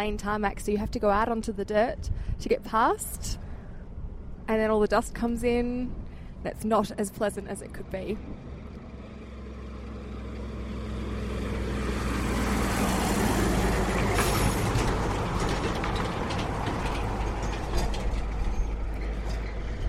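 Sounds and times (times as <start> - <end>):
speech: 0.0 - 3.4, 4.5 - 8.5
three-carriage road train carrying ore passing on dirt: 8.2 - 19.8
road train rattling and clanking: 12.8 - 19.8.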